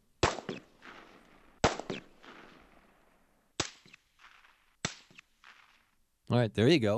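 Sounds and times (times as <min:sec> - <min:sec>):
loud booming gunshots with long tails: 0:00.2 - 0:02.9, 0:03.6 - 0:05.8
muted gunshot pops: 0:00.2 - 0:05.9
speech: 0:06.3 - 0:06.9.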